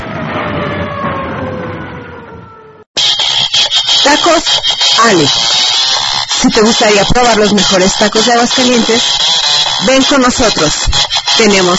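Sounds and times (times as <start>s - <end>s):
rushing roar: 0.0s - 2.8s
police patrol car siren wailing: 0.0s - 10.6s
speech: 4.1s - 11.7s.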